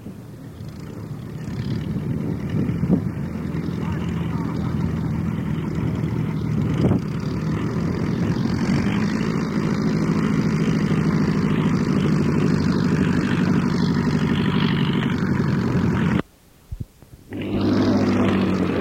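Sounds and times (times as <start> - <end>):
Luscombe Phantom airplane with 65 hp Franklin engine droning: 0.0 - 16.3, 17.0 - 18.8.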